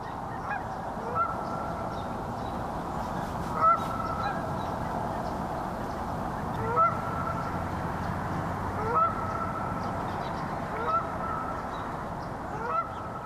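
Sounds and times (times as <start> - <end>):
low roar of rush-hour traffic: 0.0 - 13.2
Canada goose honking: 0.4 - 1.6, 3.5 - 5.3, 6.4 - 7.6, 8.8 - 9.8, 10.7 - 11.6, 12.6 - 13.1.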